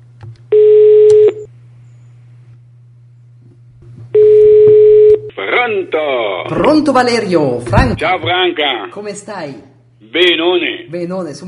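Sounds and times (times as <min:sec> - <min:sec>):
telephone line tone beeps while a call is placed: 0:00.5 - 0:01.5, 0:04.2 - 0:05.3
speech: 0:05.4 - 0:11.4.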